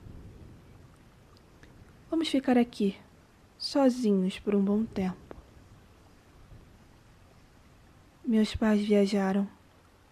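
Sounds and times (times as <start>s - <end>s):
deep rolling rumble of thunder: 0.0s - 3.7s, 4.3s - 8.2s
steady rain: 0.0s - 10.1s
drip-like ticks: 0.9s - 2.0s
speech: 2.2s - 3.0s, 3.6s - 5.2s, 8.3s - 9.6s.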